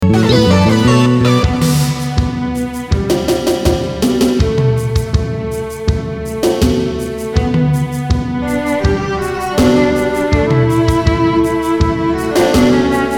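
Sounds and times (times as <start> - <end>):
timpani in an arrangement: 0.0 - 13.1.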